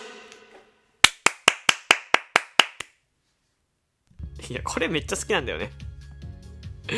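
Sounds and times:
hand claps: 0:01.0 - 0:03.0
speech: 0:04.5 - 0:05.9.

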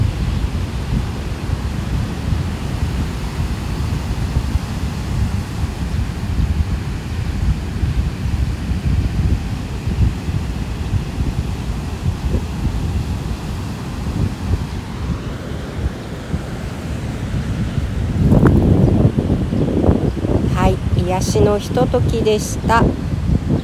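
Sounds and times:
ocean surf rumbling at a surf spot: 0:00.0 - 0:23.6
wind buffeting the microphone: 0:00.0 - 0:23.6
brief voice-like sound: 0:20.5 - 0:22.9
speech: 0:21.2 - 0:23.0.

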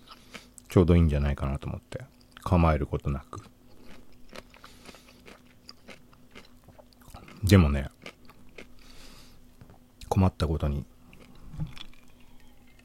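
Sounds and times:
person chewing and crunching food: 0:00.0 - 0:00.7, 0:02.1 - 0:09.3, 0:11.0 - 0:12.8
speech: 0:00.7 - 0:03.6, 0:07.4 - 0:07.9, 0:10.2 - 0:10.9.

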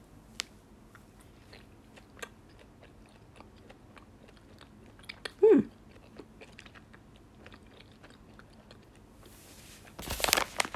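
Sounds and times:
biting and chewing a round flat coin-sized cola-flavored gummy candy: 0:00.9 - 0:09.3.

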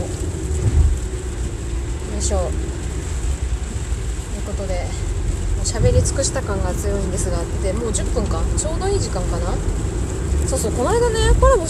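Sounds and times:
heavy rain drumming on a vehicle roof heard from inside a car: 0:00.0 - 0:11.6
speech: 0:02.2 - 0:02.8, 0:04.6 - 0:09.9, 0:10.5 - 0:11.6.

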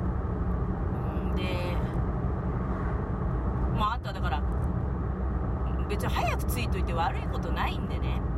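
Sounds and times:
road rumble from inside a moving car on a congested road: 0:00.0 - 0:08.3
speech: 0:06.0 - 0:08.3.

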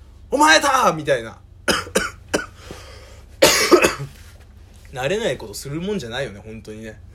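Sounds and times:
speech: 0:00.3 - 0:01.4, 0:04.9 - 0:07.1
coughing fit: 0:01.7 - 0:02.8, 0:03.4 - 0:04.2
breathing after coughing: 0:02.6 - 0:03.4.

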